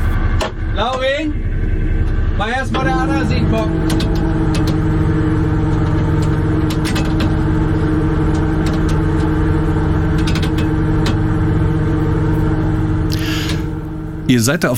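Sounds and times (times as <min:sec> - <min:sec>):
shrimp cutter engine drone in the Wadden Sea, North Sea: 0:00.0 - 0:14.7
speech: 0:00.8 - 0:01.5, 0:02.4 - 0:04.3, 0:14.3 - 0:14.7
mechanical clicks and knocks as nets are put out: 0:02.8 - 0:11.4.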